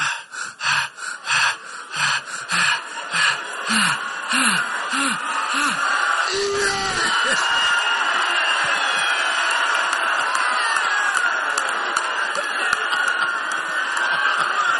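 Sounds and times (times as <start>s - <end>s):
excited heavy panting breaths with gasping edge: 0.0s - 7.4s
laughter: 0.0s - 14.7s.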